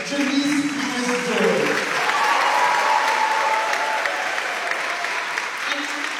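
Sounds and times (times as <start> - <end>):
crowd cheering and clapping at a town meeting: 0.0 - 6.1
whoops: 2.0 - 5.3.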